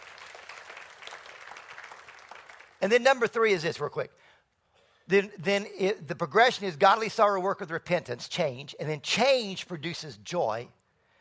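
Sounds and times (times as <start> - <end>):
church congregation clapping as an offering: 0.0 - 3.7
speech: 2.8 - 4.3, 5.1 - 10.8.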